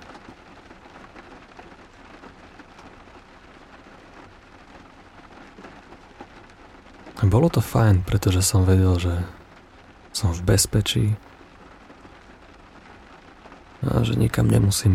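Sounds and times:
rain falling heard from indoors: 0.0 - 14.9
speech: 7.2 - 9.4, 10.2 - 11.3, 13.9 - 14.9.

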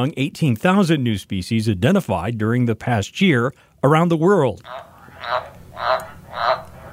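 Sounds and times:
speech: 0.0 - 6.6
newly identified Indonesian frog species calling: 4.6 - 6.9.

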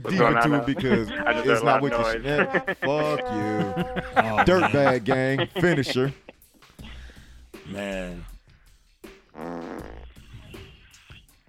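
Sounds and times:
speech: 0.0 - 6.2, 7.7 - 8.3, 9.4 - 10.0
laughter: 0.0 - 6.4
loud buzzy fart: 9.2 - 10.7.

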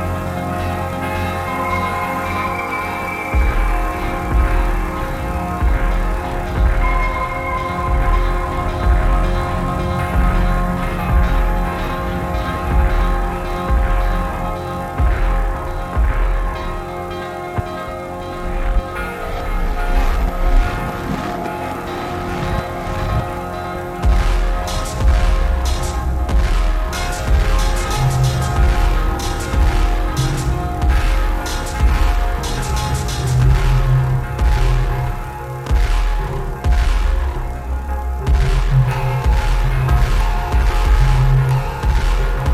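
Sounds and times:
bells ringing in long sustained tones: 0.0 - 42.5
steady low drum pulse: 3.4 - 16.7, 24.0 - 35.1, 38.3 - 42.5.

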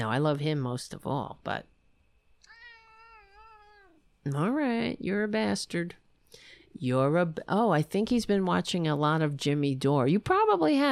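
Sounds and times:
speech: 0.0 - 1.7, 4.2 - 10.9
cat meowing: 2.4 - 4.0.

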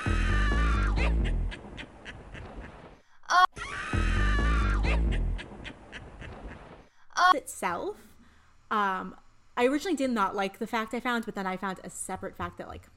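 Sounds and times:
creature scream from electronically altered pig screeches: 0.0 - 1.1, 3.3 - 5.0
speech: 7.3 - 8.1, 8.7 - 12.9.

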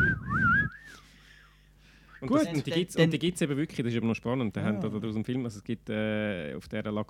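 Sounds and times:
human whistle imitating whistled language: 0.0 - 1.1
speech: 2.2 - 7.0.

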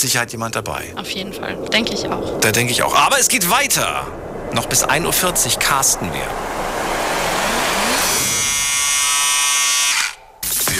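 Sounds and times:
speech: 0.0 - 7.0
electric shaver buzzing while someone is shaved: 7.3 - 10.2.

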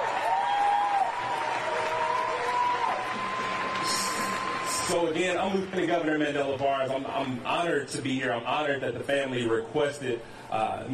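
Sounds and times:
cheers: 0.0 - 5.7
audience applause: 0.0 - 7.5
speech: 4.9 - 10.9.

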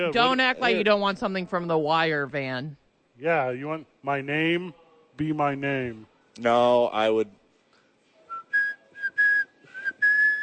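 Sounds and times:
speech: 0.0 - 7.4
person whistling a melody: 8.3 - 10.4.

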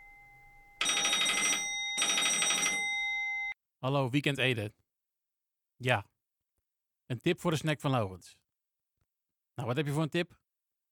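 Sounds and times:
shrill telephone bell ringing: 0.0 - 3.6
speech: 3.8 - 4.8, 5.8 - 6.1, 7.1 - 8.4, 9.6 - 10.4.

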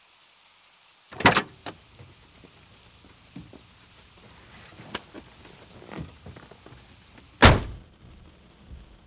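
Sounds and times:
soft rain hiss: 0.0 - 9.0
car passenger door thunk: 1.2 - 9.0
car seat creaks: 1.2 - 9.0
man shuffling into car seat: 1.2 - 9.0.

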